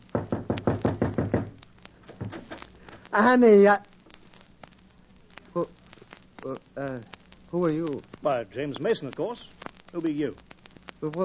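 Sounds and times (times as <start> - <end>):
knocking on a cottage door: 0.1 - 2.5
speech: 3.1 - 3.9, 5.6 - 5.8, 6.4 - 11.2.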